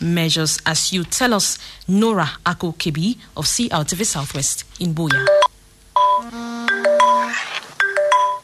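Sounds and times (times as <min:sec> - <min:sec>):
speech: 0:00.0 - 0:05.5
smartphone social media notification chime: 0:05.2 - 0:08.4.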